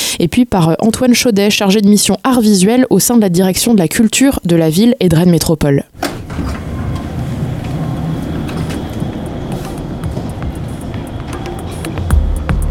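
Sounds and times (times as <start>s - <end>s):
speech: 0.2s - 6.6s
steady broadband rumble in a train station: 0.2s - 12.7s
sharp clicks and knocks in a train station: 6.0s - 12.1s.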